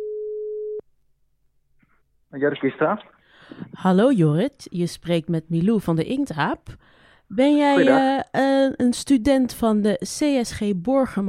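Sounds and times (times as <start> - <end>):
telephone ringing tone while placing a call: 0.0 - 0.8
speech: 2.3 - 11.2.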